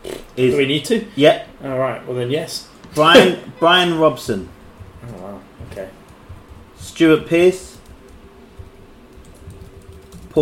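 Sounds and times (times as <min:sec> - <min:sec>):
faint steady hum: 0:00.0 - 0:10.4
speech: 0:00.4 - 0:06.0, 0:06.8 - 0:07.7
fast typing on a computer keyboard: 0:05.0 - 0:10.4.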